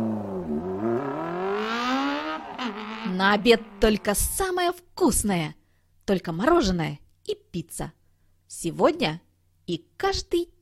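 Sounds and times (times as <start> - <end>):
race car engine revving: 0.0 - 4.4
speech: 3.2 - 10.6.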